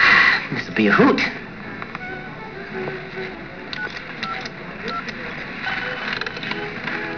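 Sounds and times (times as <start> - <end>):
speech: 0.8 - 1.4
telephone keypad beeps dialing a number: 3.7 - 6.7.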